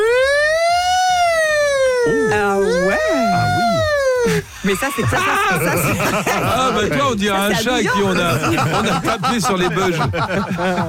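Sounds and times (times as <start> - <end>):
voice imitating a new police siren: 0.0 - 5.6
laughter: 2.8 - 10.8
speech: 4.6 - 10.8.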